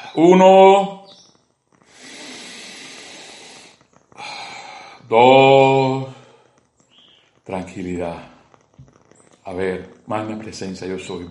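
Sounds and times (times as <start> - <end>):
speech: 0.2 - 1.0, 5.1 - 6.2, 7.5 - 8.3, 9.5 - 11.3
slow deep breath: 1.8 - 5.1, 6.1 - 6.8.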